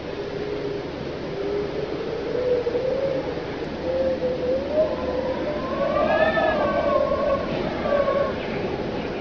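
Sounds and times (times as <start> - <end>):
wind howling: 0.0 - 9.1.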